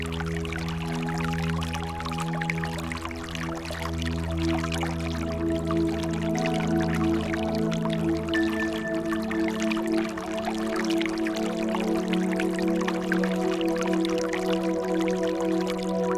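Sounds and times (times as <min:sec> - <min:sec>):
clear water stream running steadily: 0:00.0 - 0:16.1.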